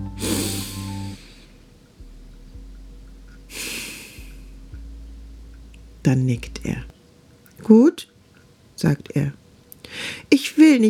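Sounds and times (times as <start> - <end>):
low steady musical drone: 0.0 - 6.9
deep breath drawn in and slowly let out: 0.2 - 1.6, 3.5 - 4.5, 9.8 - 10.3
speech: 6.0 - 6.9, 7.6 - 8.1, 8.8 - 10.8.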